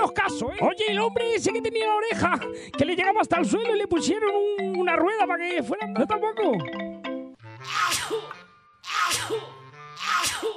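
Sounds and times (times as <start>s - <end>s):
speech: 0.1s - 6.9s, 7.6s - 10.5s
person with a heavy cold sneezing: 7.6s - 10.5s.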